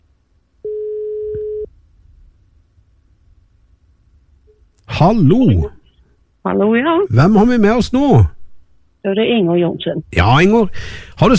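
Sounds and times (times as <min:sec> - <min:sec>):
telephone ringback tone on a call: 0:00.6 - 0:01.7
speech: 0:05.0 - 0:05.8, 0:06.4 - 0:08.3, 0:09.0 - 0:11.3.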